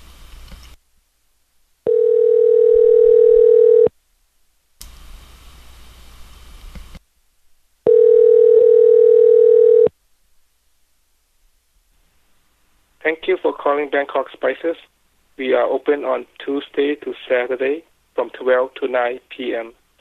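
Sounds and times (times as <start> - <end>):
ringback tone on an outgoing telephone call: 1.9 - 3.9, 7.9 - 9.9
speech: 13.4 - 19.8.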